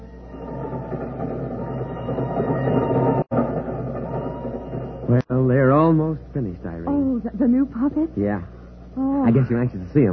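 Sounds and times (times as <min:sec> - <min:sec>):
boat train for London rolling along the rails: 0:00.0 - 0:06.5
speech: 0:05.2 - 0:10.1.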